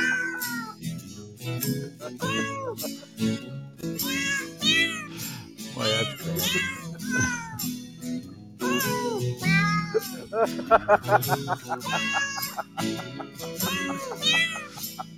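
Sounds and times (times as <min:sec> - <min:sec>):
cat meows carrying a slow carol melody: 0:00.0 - 0:01.0, 0:02.0 - 0:03.0, 0:03.9 - 0:07.8, 0:08.6 - 0:10.4, 0:11.8 - 0:12.8, 0:13.5 - 0:14.8
steady low musical accompaniment: 0:00.0 - 0:15.1
speech: 0:01.6 - 0:03.6, 0:10.4 - 0:14.6
laughter: 0:02.0 - 0:03.3, 0:05.8 - 0:07.6, 0:09.9 - 0:15.1.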